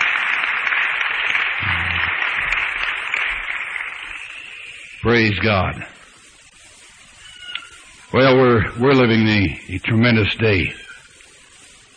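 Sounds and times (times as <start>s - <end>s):
audience clapping: 0.0s - 5.7s
speech: 5.0s - 5.9s, 8.1s - 10.8s.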